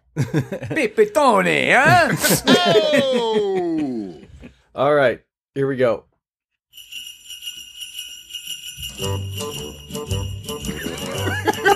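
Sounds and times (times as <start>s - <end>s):
laughter: 0.1s - 4.5s, 10.7s - 11.7s
speech: 0.2s - 3.9s, 4.8s - 6.1s, 9.0s - 11.7s
bright jingle bells: 6.7s - 11.7s.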